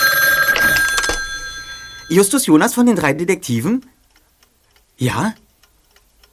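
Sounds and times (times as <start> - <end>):
old-fashioned telephone bell ringing: 0.0 - 2.5
speech: 2.1 - 4.0, 5.0 - 5.4.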